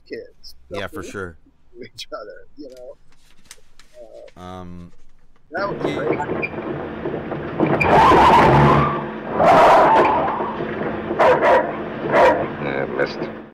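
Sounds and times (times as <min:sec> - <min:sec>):
speech: 0:00.1 - 0:03.4, 0:04.0 - 0:08.8, 0:12.7 - 0:13.4
car tires screeching while swerving: 0:05.6 - 0:13.4
dog barking: 0:11.1 - 0:12.6.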